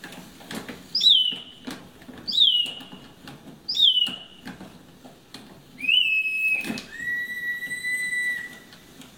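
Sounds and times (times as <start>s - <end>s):
small handmade wooden clockwork bird bellows whistle chirping and warbling: 0.9s - 1.6s, 2.3s - 3.0s, 3.7s - 4.4s, 5.8s - 8.8s.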